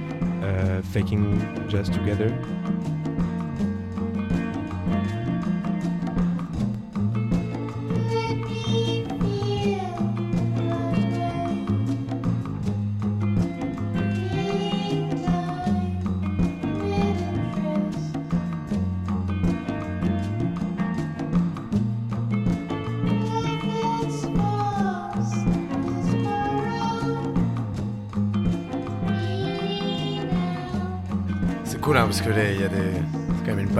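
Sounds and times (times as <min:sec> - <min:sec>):
dissonant psychedelic pop song: 0:00.0 - 0:33.7
speech: 0:00.6 - 0:03.0
person singing gliding vocal: 0:07.8 - 0:11.9, 0:14.2 - 0:18.2, 0:23.1 - 0:27.4, 0:29.0 - 0:31.1, 0:31.7 - 0:33.7.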